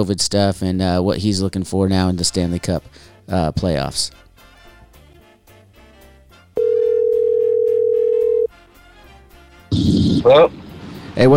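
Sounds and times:
speech: 0.0 - 4.2, 9.8 - 10.6, 11.2 - 11.3
ringback tone from an outgoing phone call: 6.6 - 8.5.

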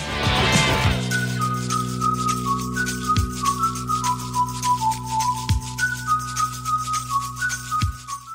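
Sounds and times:
sustained synth chords: 0.0 - 7.7
man whistling a bright pop song melody: 0.8 - 8.3.

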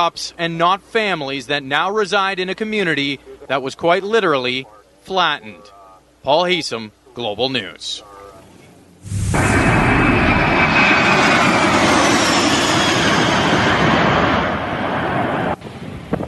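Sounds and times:
speech: 0.0 - 8.1
bomber aircraft roaring as it drops fire retardant over a wildfire: 8.4 - 16.1.

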